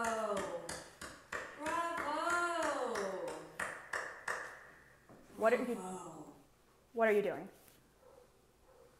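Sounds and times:
single person clapping: 0.0 - 4.8
speech: 5.4 - 7.6.

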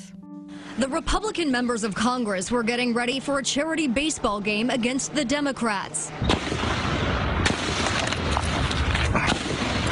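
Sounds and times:
dense noisy background: 0.6 - 9.8
speech: 0.8 - 6.6
gunshots: 6.2 - 9.8.

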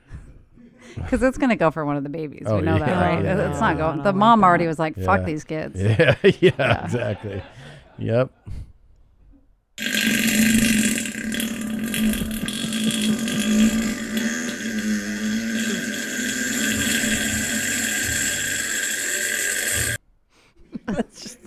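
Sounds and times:
speech: 1.1 - 8.6
laughter: 2.5 - 8.5
long raspy fart in a played video clip: 9.8 - 20.0.

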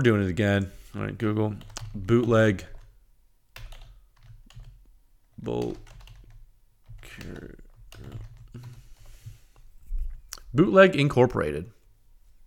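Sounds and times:
speech: 0.0 - 2.7, 5.4 - 5.9, 7.1 - 8.7, 10.5 - 11.8
typing on a computer keyboard: 1.6 - 2.9, 3.6 - 4.8, 5.4 - 8.9
person murmuring: 7.0 - 8.9.

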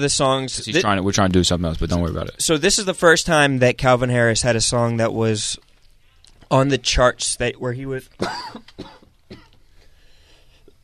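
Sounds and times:
speech: 0.0 - 5.6, 6.5 - 9.4
coughing: 8.1 - 9.6.

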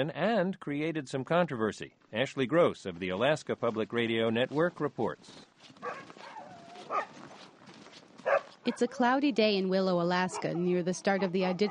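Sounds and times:
speech: 0.0 - 6.1, 8.7 - 11.7
sled dogs in training barking in Willow, Alaska: 5.8 - 7.3, 8.2 - 9.0, 10.2 - 11.7
sled dogs in training yipping and whining in Willow, Alaska: 5.8 - 7.4, 8.2 - 8.9, 11.5 - 11.7.

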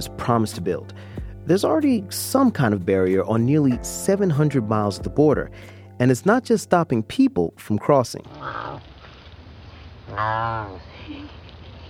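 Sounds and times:
speech: 0.0 - 8.9, 10.1 - 11.4
ocelot half-purr half-growl at a zoo in Belize: 8.2 - 9.0, 10.1 - 11.2.

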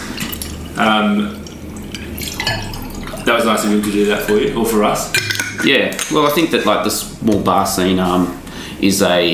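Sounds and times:
speech: 0.8 - 1.4, 2.4 - 9.3
bottled cocktail poured from a bottle into a glass: 1.4 - 3.9.

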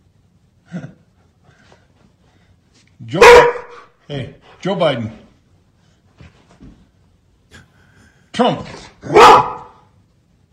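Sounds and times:
speech: 3.1 - 3.5, 4.1 - 5.2, 8.4 - 9.2
dog barking: 3.1 - 3.9, 9.0 - 9.9.

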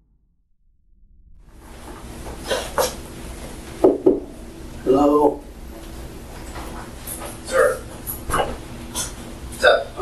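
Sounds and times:
low hum: 1.1 - 10.0
knocking on an interrogation room door: 3.8 - 4.3.

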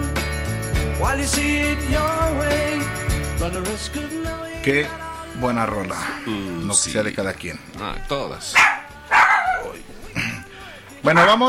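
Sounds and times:
speech: 1.0 - 8.8, 11.0 - 11.4
dog barking: 8.5 - 9.8, 11.1 - 11.4.

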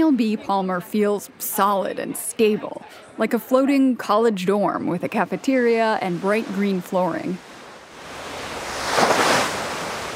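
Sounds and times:
wind over open ocean: 0.0 - 10.1
speech: 0.1 - 7.5
20-foot ocean swells breaking in open ocean south of Chile: 5.4 - 10.1.

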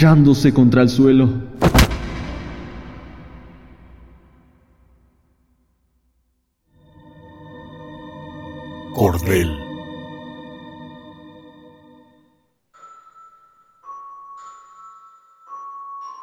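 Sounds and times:
speech: 0.0 - 1.8, 9.0 - 9.6
gunshot echoing in a church: 1.6 - 3.4.

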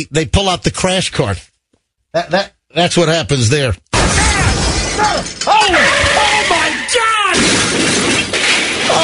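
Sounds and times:
speech: 0.0 - 1.5, 2.1 - 4.2, 5.0 - 8.1
crunching metal in a car crash: 3.9 - 9.0
dense glass shattering in a car crash in a parking lot: 3.9 - 9.0.

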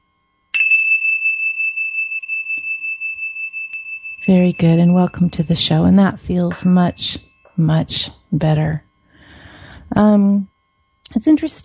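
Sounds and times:
single chime struck: 0.5 - 8.1
speech: 4.2 - 8.9, 10.0 - 10.5, 11.1 - 11.6.

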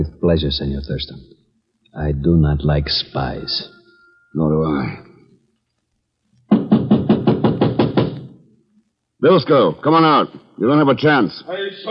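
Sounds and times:
speech: 0.2 - 1.4, 2.0 - 5.1, 9.2 - 11.8
firm knocks on a wooden door: 6.5 - 8.3.

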